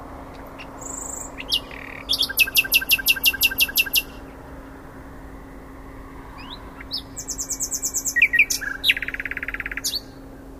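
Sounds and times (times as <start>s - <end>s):
Common nightingale Luscinia megarhynchos singing: 0.6s - 4.2s, 6.4s - 10.5s.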